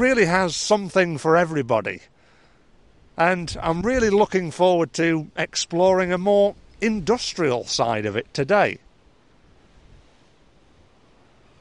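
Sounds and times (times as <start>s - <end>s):
speech: 0.0s - 2.2s, 3.2s - 8.8s
wind buffeting against the microphone: 2.8s - 4.5s, 5.7s - 11.2s
wind roaring outdoors: 2.8s - 11.3s.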